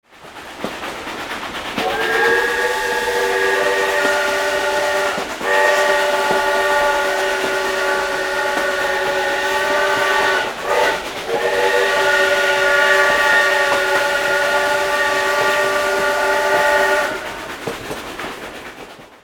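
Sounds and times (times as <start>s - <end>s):
steam train heard riding onboard: 0.0s - 19.2s
train steam whistle blasts: 1.8s - 17.7s.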